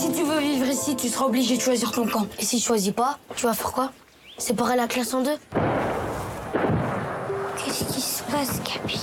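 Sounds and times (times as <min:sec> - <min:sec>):
speech: 0:00.1 - 0:05.7, 0:08.3 - 0:09.0
heavy booming gunshots with rumbling roar in a film trailer: 0:05.5 - 0:07.3.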